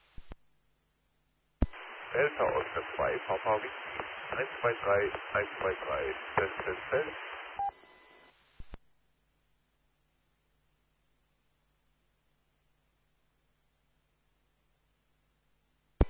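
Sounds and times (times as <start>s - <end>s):
radio static hiss: 0.0s - 0.4s, 1.6s - 8.8s
faint low hum: 0.0s - 16.0s
speech: 2.2s - 7.4s.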